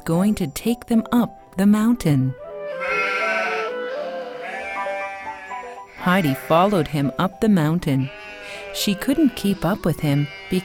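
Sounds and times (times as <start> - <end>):
speech: 0.0 - 2.9, 6.0 - 10.6
several goats bleating: 2.8 - 10.6.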